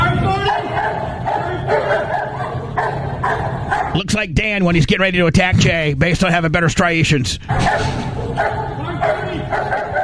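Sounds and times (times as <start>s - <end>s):
dog straining to get to a man barking excitedly: 0.4s - 4.0s, 7.5s - 10.0s
speech: 4.0s - 8.6s.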